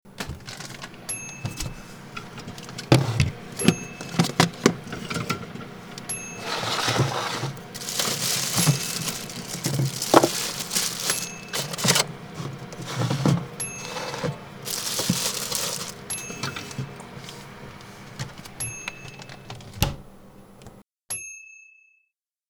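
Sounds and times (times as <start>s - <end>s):
refrigerator door opening: 0.1s - 20.8s.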